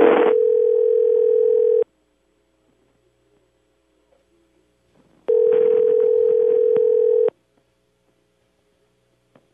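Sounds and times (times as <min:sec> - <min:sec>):
telephone line ringing through the handset as a call is put through: 0:00.0 - 0:01.8, 0:05.3 - 0:07.3.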